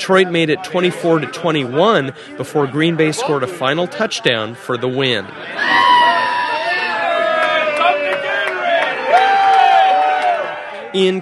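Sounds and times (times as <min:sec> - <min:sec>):
speech: 0:00.0 - 0:06.2, 0:10.9 - 0:11.1
bar crowd cheering and whooping sarcastically: 0:05.4 - 0:11.1.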